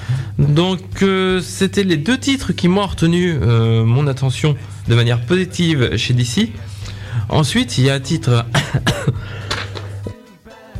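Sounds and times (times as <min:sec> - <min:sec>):
speech: 0:00.4 - 0:06.7, 0:07.3 - 0:09.4
person coughing: 0:08.5 - 0:10.0.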